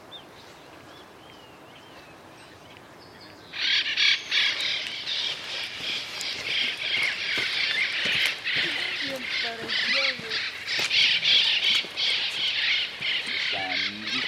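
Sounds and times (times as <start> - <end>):
flock of yellow-eared parrots calling: 3.5 - 14.2.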